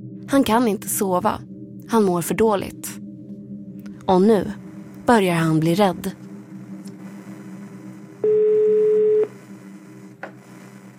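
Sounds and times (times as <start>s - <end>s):
speech: 0.3s - 3.0s, 4.1s - 6.2s
telephone ringing tone of a call placed to an emergency service: 8.2s - 9.4s.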